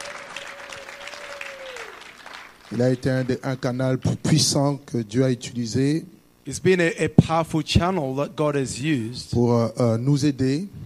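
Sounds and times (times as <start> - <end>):
church congregation applauding: 0.0 - 3.6
speech: 2.7 - 10.8.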